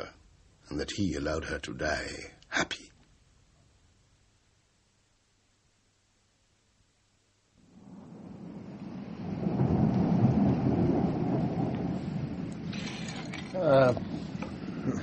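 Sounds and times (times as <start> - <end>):
speech: 0.7 - 2.9
steady rain during a thunderstorm: 7.0 - 15.0
deep rolling thunder rumbling: 7.6 - 15.0.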